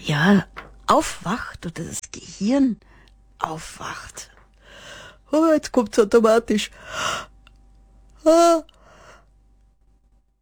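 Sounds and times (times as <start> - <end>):
speech: 0.1 - 7.3, 8.2 - 8.8
breathy inhale: 4.6 - 5.3, 6.7 - 7.4, 8.7 - 9.3
person yawning with a drawn-out voiced groan: 8.2 - 9.2.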